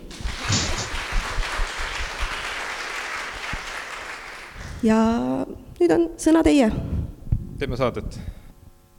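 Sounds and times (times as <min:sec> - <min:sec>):
applause from a small group: 0:00.0 - 0:04.8
speech: 0:04.8 - 0:06.9, 0:07.6 - 0:08.3.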